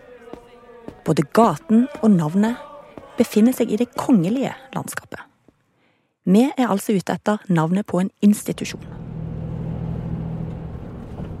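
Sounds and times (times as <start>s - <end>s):
speech: 1.0s - 5.3s, 6.3s - 9.0s
bus engine drone in motion: 8.7s - 11.3s.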